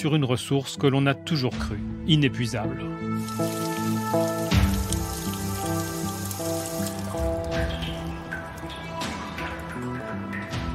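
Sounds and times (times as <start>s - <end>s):
speech: 0.0s - 4.6s
rain shower falling: 3.2s - 10.6s.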